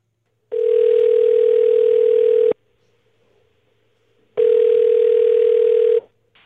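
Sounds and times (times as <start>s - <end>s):
telephone ringback tone on an outgoing call through a narrow phone line: 0.5s - 2.6s, 4.4s - 6.0s.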